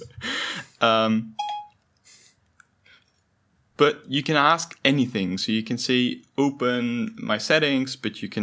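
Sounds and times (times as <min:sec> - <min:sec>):
speech: 0:00.8 - 0:01.4, 0:03.8 - 0:08.4
voice assistant two-part electronic activation chime: 0:01.4 - 0:01.7.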